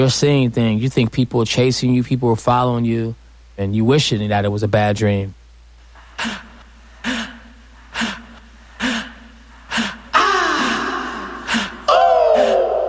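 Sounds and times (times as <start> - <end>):
speech: 0.0 - 5.4, 6.2 - 6.5
heavy rhythmic panting breaths in a song: 5.9 - 11.9.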